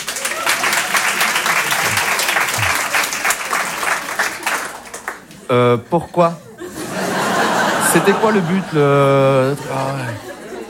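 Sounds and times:
crowd clapping: 0.0s - 5.5s
laughter: 0.5s - 3.2s, 5.6s - 10.6s
speech: 5.5s - 6.5s, 7.9s - 10.3s.

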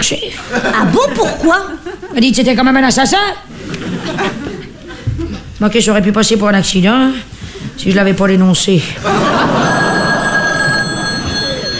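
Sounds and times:
speech: 0.0s - 4.5s, 5.6s - 9.7s
laughter: 0.4s - 2.3s, 3.5s - 5.6s, 9.0s - 11.7s
telephone ringing with a steady continuous bell tone: 9.1s - 11.7s.

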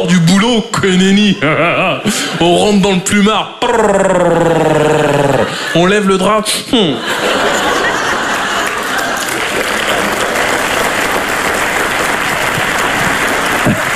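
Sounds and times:
speech: 0.6s - 7.6s
laughter: 1.2s - 2.9s, 3.6s - 6.0s, 6.8s - 13.9s
large crowd clapping: 7.3s - 13.9s.

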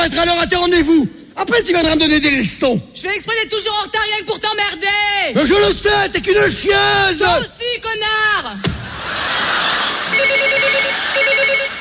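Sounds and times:
speech: 0.1s - 8.8s
laughter: 8.7s - 11.7s
telephone ringing with electronic trills: 10.1s - 11.7s.

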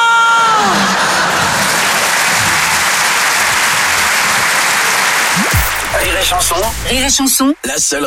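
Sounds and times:
cheering: 0.0s - 8.0s
large audience applauding: 0.0s - 8.0s
laughter: 0.2s - 6.7s
speech: 6.2s - 8.0s.

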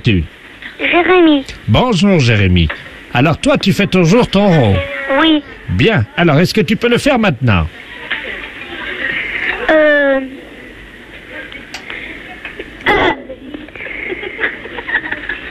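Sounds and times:
speech: 0.0s - 7.8s
thin telephone line hiss: 0.0s - 15.5s
child burping over a telephone line: 4.6s - 5.4s, 12.8s - 13.4s
laughter: 12.0s - 15.5s.

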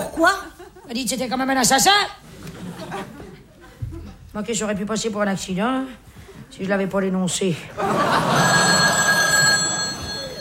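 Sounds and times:
speech: 0.2s - 2.3s, 4.4s - 8.8s
laughter: 2.5s - 4.2s, 7.7s - 10.3s
telephone ringing with a loud electronic bell tone: 8.0s - 10.3s.

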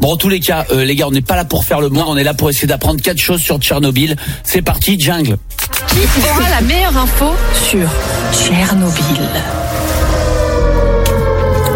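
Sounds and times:
speech: 0.0s - 10.0s
siren wailing with layered tones: 6.4s - 11.7s.

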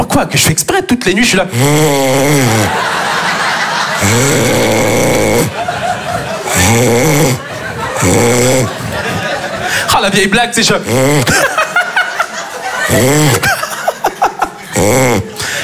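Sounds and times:
speech: 0.1s - 3.1s, 4.0s - 5.7s, 6.7s - 7.4s, 8.0s - 9.0s, 10.0s - 11.6s, 12.9s - 13.5s, 14.8s - 15.3s
man imitating loud snoring with his voice: 1.5s - 9.8s, 10.8s - 11.7s, 12.8s - 13.8s, 14.6s - 15.6s
laughter: 1.6s - 15.6s.

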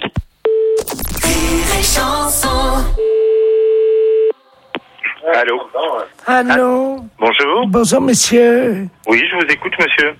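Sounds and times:
dense burst of noisy sound: 0.8s - 3.0s
speech: 1.8s - 3.1s, 5.3s - 10.1s
telephone line tone while placing a phone call: 3.0s - 4.4s.

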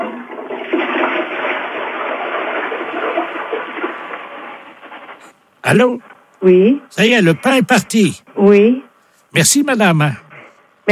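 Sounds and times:
toilet flushing with loud rush of water: 0.0s - 5.0s
speech: 5.7s - 10.2s.

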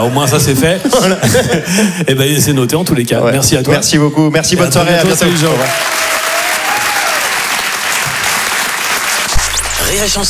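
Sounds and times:
laughter: 0.0s - 2.1s
speech: 0.0s - 6.2s, 9.9s - 10.2s
comedy club audience applause: 5.0s - 10.2s.

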